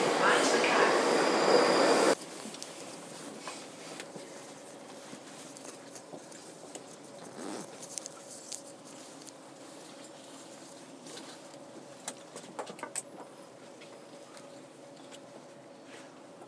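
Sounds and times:
rail sounds: 0:00.0 - 0:02.2
train rumbling at station platform: 0:00.0 - 0:04.7.

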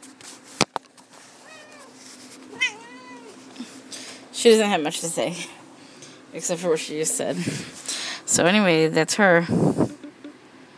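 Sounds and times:
quiet room hum: 0:00.0 - 0:10.7
cat meowing: 0:01.4 - 0:03.4
speech: 0:04.4 - 0:05.6, 0:06.3 - 0:10.0.

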